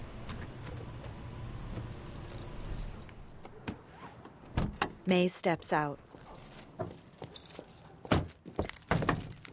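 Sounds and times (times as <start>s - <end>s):
gray compact sedan engine rumbling as it pulls up to a house: 0.0s - 5.0s
speech: 5.0s - 6.1s.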